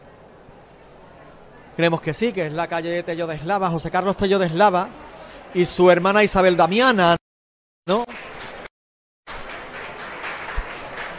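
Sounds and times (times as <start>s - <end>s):
speech: 1.8s - 7.2s
crowd applause: 7.9s - 8.7s, 9.3s - 11.1s.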